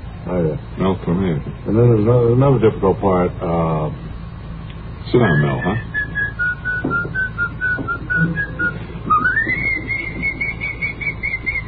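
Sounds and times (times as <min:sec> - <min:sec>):
low steady hum: 0:00.0 - 0:11.6
speech: 0:00.3 - 0:04.1, 0:05.1 - 0:05.9
person whistling a tune: 0:05.2 - 0:11.6.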